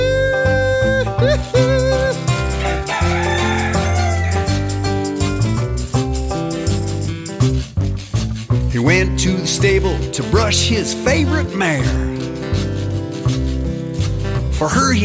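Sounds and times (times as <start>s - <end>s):
steady full musical backing: 0.0s - 15.0s
rooster crowing cock-a-doodle-doo: 2.4s - 4.9s
speech: 10.2s - 12.1s, 14.6s - 15.0s.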